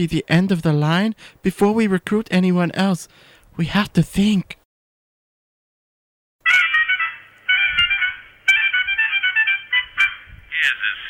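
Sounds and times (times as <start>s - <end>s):
speech: 0.0s - 4.6s
mobile phone ringtone playing a bright electronic melody: 6.4s - 11.0s.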